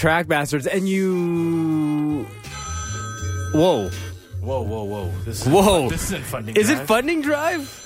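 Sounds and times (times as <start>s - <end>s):
speech: 0.0s - 2.6s, 3.5s - 7.8s
sampled telephone bell ringing in a musical mix: 2.5s - 4.1s, 7.2s - 7.8s.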